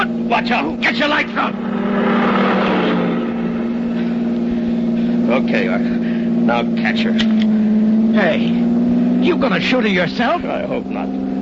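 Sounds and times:
speech: 0.0s - 2.1s, 5.3s - 11.2s
heavy truck engine roaring: 0.0s - 6.4s.

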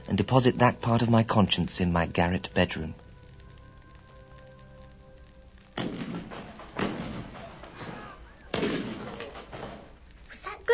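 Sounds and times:
speech: 0.1s - 3.0s
distant cannon firing warning shot for an escaped convict: 5.7s - 10.0s.

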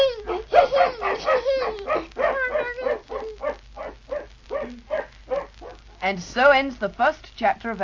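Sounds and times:
young puppy barking and yipping: 0.2s - 6.0s
speech: 6.1s - 7.8s.

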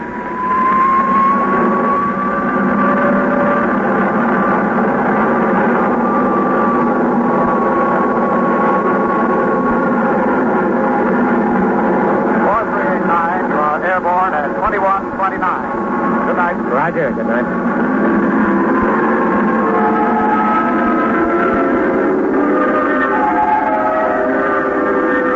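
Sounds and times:
military jet engine roaring at takeoff power: 0.0s - 25.3s
radio-like voices: 12.4s - 17.6s.

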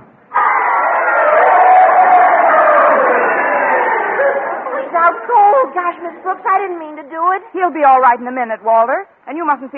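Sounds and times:
voices shouting from crowd: 0.3s - 5.7s
crowd cheering at a fight: 0.3s - 6.9s
speech: 5.6s - 9.7s.

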